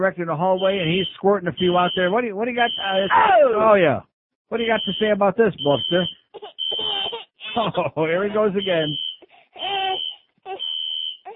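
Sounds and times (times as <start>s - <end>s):
speech: 0.0s - 6.5s, 7.6s - 9.0s
fire alarm ringing: 0.6s - 3.1s, 4.6s - 7.1s, 8.5s - 11.3s
wailing cry-like vocal sounds: 3.0s - 3.8s, 9.6s - 10.7s
laughter: 7.5s - 8.8s.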